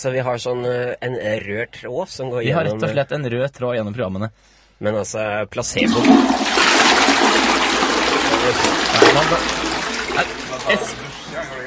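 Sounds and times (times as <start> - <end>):
speech: 0.0 - 6.7, 9.2 - 9.6
shower spraying water in a toilet room: 6.8 - 10.7.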